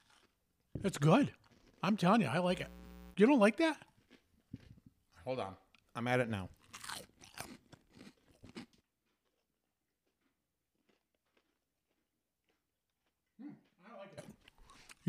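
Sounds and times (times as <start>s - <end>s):
chewing crunchy food into a microphone: 0.0s - 0.4s, 1.3s - 2.0s, 3.8s - 5.1s, 6.5s - 15.0s
speech: 0.8s - 3.9s, 5.2s - 6.6s.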